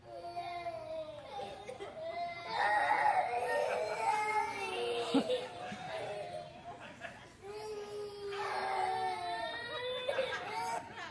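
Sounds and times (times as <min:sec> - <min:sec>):
young children crying and wailing over eating vegetables: 0:00.0 - 0:06.7, 0:07.4 - 0:11.0
laughter: 0:01.6 - 0:11.0.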